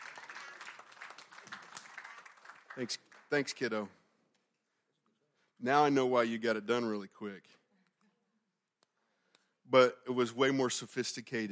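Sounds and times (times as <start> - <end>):
crowd applauding: 0.0 - 3.7
speech: 2.8 - 4.0, 5.6 - 7.6, 9.7 - 11.5.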